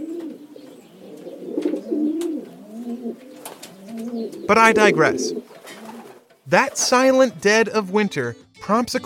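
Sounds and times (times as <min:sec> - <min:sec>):
several pigeons cooing in throaty warbling murmurs: 0:00.0 - 0:07.2
speech: 0:04.5 - 0:05.5, 0:06.5 - 0:09.0.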